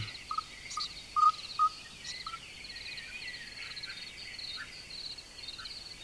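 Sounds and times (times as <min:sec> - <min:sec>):
nestlings begging with thin high chirps: 0:00.0 - 0:02.9
steady faint insect-like hiss: 0:00.0 - 0:06.0.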